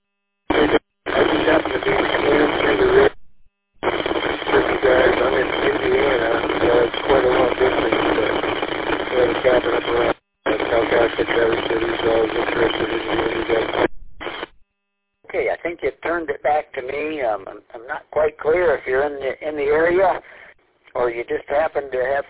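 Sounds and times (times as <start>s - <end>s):
amateur radio transmission static: 0.5s - 3.2s, 3.8s - 14.6s, 15.3s - 22.2s
speech: 19.1s - 20.2s.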